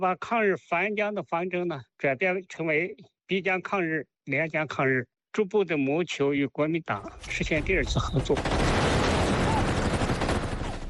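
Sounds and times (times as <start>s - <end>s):
speech: 0.0s - 9.0s
rapid burst of gunfire: 7.3s - 10.8s.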